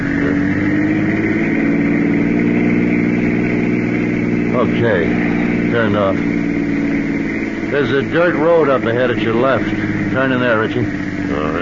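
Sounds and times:
car engine accelerating: 0.0 - 11.6
speech: 4.7 - 6.4, 7.7 - 11.0.

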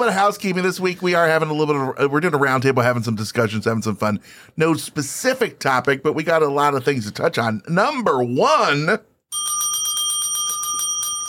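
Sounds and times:
speech: 0.0 - 9.5
small bell ringing rapidly: 9.3 - 11.2.

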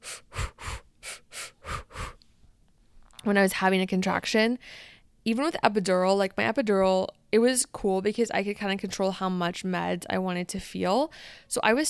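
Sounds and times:
rhythmic mouth breathing as a labor-contraction technique: 0.0 - 2.3
speech: 3.2 - 11.8.

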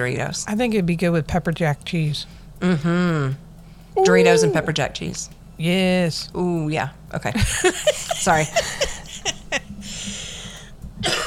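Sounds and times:
speech: 0.0 - 3.4, 4.0 - 8.9
laughter: 4.0 - 4.8, 7.4 - 9.7
raspy wheezing breath: 9.8 - 10.8
harsh coughing fit: 11.0 - 11.2.

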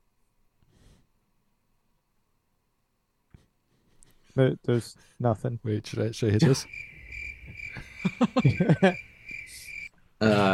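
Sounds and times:
speech: 4.4 - 6.9, 7.5 - 9.1, 10.2 - 10.5
crickets chirping: 6.4 - 10.5
people laughing: 7.3 - 9.1.

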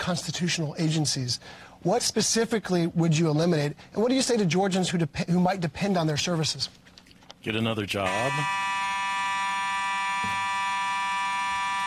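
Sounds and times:
speech: 0.0 - 6.8, 7.4 - 8.6
fire alarm blaring: 8.0 - 11.8.

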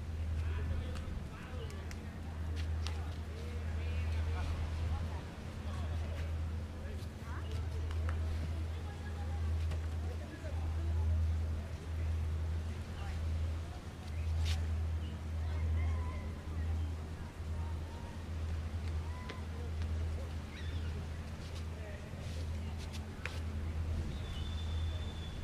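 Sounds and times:
people chatting in Spanish on a beach in Playa Del Carmen: 0.0 - 25.4
ocean waves at Playa Del Carmen: 2.1 - 22.6
birds chirping: 20.4 - 21.1, 24.0 - 25.4.

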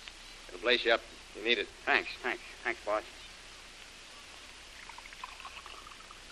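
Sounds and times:
speech: 0.6 - 3.3
liquor being poured into a glass: 4.7 - 6.3.

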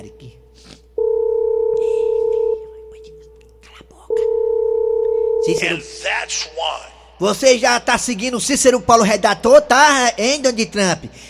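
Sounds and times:
telephone ringback tone as a call is placed: 1.0 - 2.6, 4.2 - 5.7
speech: 5.5 - 11.2.

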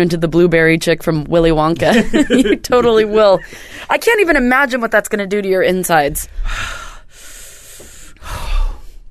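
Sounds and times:
speech: 0.0 - 6.8
person breathing heavily after chugging juice: 6.3 - 9.1.

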